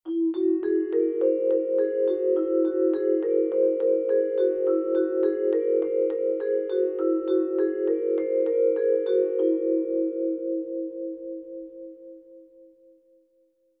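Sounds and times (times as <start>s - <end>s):
vibraphone playing pentatonic scale: 0.1s - 12.4s.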